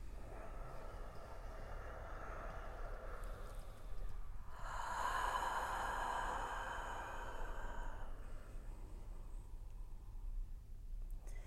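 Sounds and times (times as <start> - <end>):
deep breath drawn in slowly: 0.0 - 9.6
low steady hum: 0.0 - 11.4.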